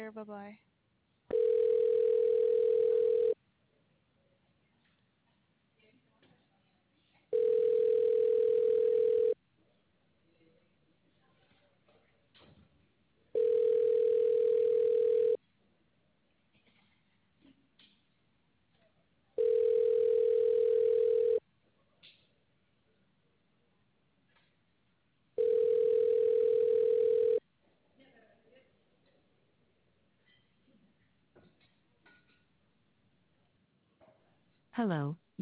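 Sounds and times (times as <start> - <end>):
speech: 0.0 - 0.7, 34.8 - 35.4
telephone ringback tone while a call is being transferred: 1.3 - 3.4, 7.3 - 9.4, 13.4 - 15.4, 19.4 - 21.4, 25.4 - 27.4.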